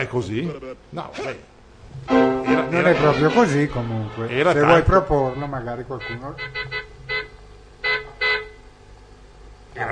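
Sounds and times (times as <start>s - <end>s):
speech: 0.0s - 6.7s, 9.8s - 9.9s
car horn honking in short blasts: 2.1s - 8.6s.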